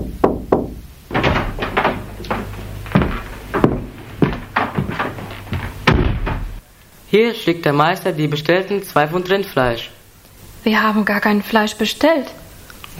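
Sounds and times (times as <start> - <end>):
knocking on a door: 0.0 - 6.6
speech: 7.1 - 10.0, 10.6 - 12.4.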